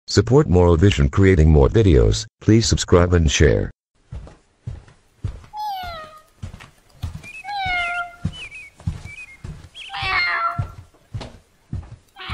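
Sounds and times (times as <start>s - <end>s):
speech: 0.1s - 3.8s
steady thumping beat: 4.1s - 12.3s
cat screaming meows: 5.6s - 6.3s, 7.5s - 8.3s, 9.9s - 10.8s, 12.2s - 12.3s.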